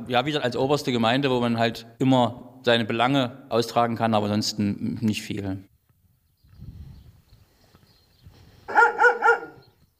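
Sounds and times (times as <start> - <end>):
speech: 0.0 - 5.7
dogs barking: 8.7 - 9.7.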